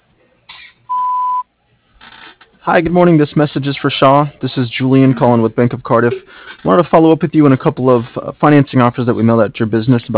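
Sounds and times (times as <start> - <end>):
answering machine beep before recording a message: 0.9 - 1.4
speech: 2.6 - 10.1.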